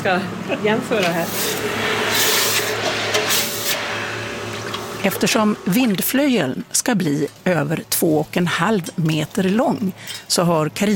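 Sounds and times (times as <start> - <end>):
speech: 0.0 - 3.5, 5.0 - 10.9
hot forged metal hissing in a bucket of water: 1.1 - 5.5.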